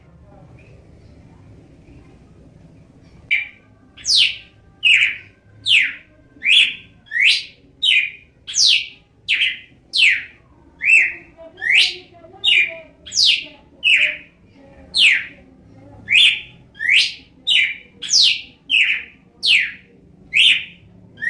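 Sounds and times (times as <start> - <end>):
red-cowled cardinal whistling song: 3.3 - 14.3, 16.1 - 21.2.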